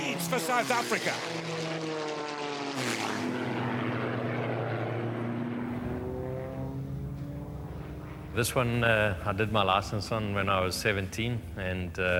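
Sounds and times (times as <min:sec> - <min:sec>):
propeller aeroplane engine flying past: 0:00.0 - 0:09.2
speech: 0:00.3 - 0:02.0, 0:02.8 - 0:03.4, 0:08.4 - 0:12.1.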